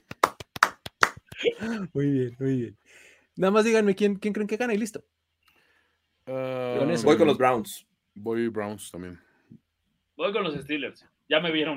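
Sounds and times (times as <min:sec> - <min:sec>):
short round of applause with sharp hand claps: 0:00.0 - 0:01.5
speech: 0:01.4 - 0:05.1, 0:06.3 - 0:09.6, 0:10.2 - 0:11.7.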